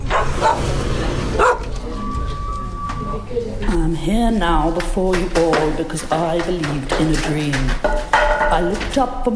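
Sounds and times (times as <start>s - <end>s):
several dogs barking and yipping: 0.1s - 2.3s
dogs whimpering: 1.3s - 3.3s
speech: 4.3s - 9.3s.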